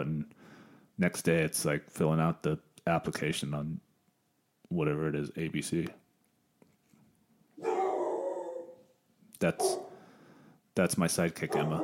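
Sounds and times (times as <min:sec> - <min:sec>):
speech: 0:01.0 - 0:03.9, 0:04.7 - 0:06.0, 0:09.4 - 0:09.8, 0:10.8 - 0:11.8
female pet dog barking: 0:07.6 - 0:08.8, 0:09.6 - 0:10.0, 0:11.5 - 0:11.8.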